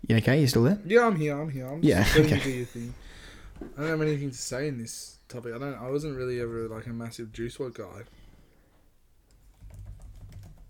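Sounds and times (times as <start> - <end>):
speech: 0.1 - 8.2
computer keyboard keys clicking as someone types: 9.3 - 10.6.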